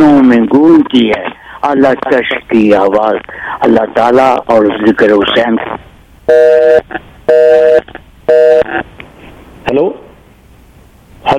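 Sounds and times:
speech: 0:00.3 - 0:09.0, 0:09.7 - 0:10.0
telephone busy signal after a dropped call: 0:06.3 - 0:08.8.

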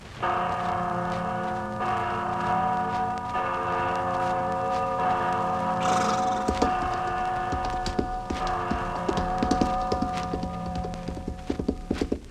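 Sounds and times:
large bell ringing with deep sustained overtones: 0:00.0 - 0:11.9
rhythmic clip-clopping hoofbeats: 0:05.8 - 0:12.2.

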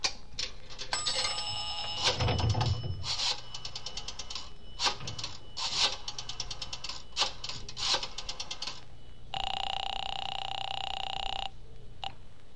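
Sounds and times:
steady buzzing telephone ring tone: 0:01.0 - 0:11.5
rotary phone being dialed in a drugstore phone booth: 0:01.8 - 0:08.8.

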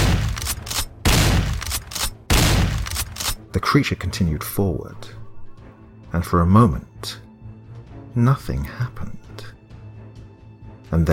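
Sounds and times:
12-gauge shotgun blasts fired skyward: 0:00.0 - 0:03.4
speech: 0:03.6 - 0:05.2, 0:06.1 - 0:07.2, 0:08.2 - 0:09.5, 0:10.9 - 0:11.1.

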